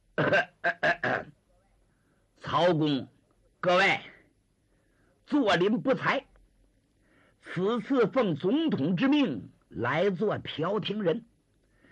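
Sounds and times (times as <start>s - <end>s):
male storyteller imitating a man coughing: 0.2s - 1.3s
speech: 2.6s - 4.1s, 5.3s - 6.3s, 7.4s - 11.3s.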